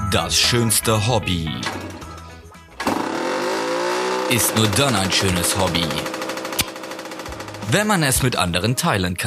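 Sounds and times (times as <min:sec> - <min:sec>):
speech: 0:00.1 - 0:01.9, 0:04.3 - 0:06.2, 0:07.7 - 0:09.2
mopeds with small two-stroke engines revving and accelerating: 0:02.8 - 0:08.0.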